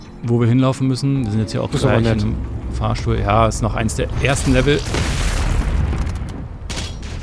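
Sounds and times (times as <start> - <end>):
speech: 0.2 - 5.2
low rumble: 1.2 - 7.2
video game explosions booming: 1.8 - 7.2.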